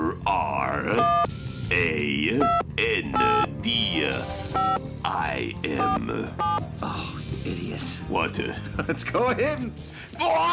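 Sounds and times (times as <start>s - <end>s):
speech: 0.3s - 10.5s
electronic beeping tones from a portal device dial: 1.0s - 1.3s, 2.4s - 3.6s, 4.5s - 4.8s.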